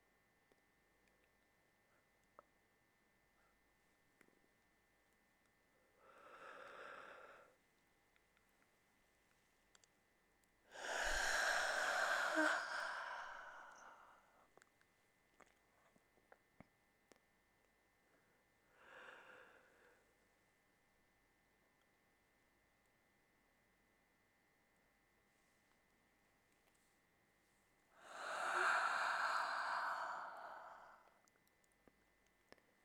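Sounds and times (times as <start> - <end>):
soft breath: 5.7 - 7.6, 10.7 - 14.6, 18.1 - 20.2, 28.0 - 31.3
person yawning deliberately with a voiced groan: 10.8 - 14.2, 28.0 - 31.1.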